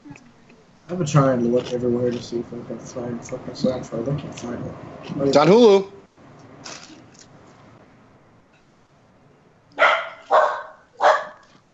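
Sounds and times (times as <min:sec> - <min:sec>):
speech: 0:00.9 - 0:06.0
small goldendoodle dog barking: 0:09.8 - 0:11.6.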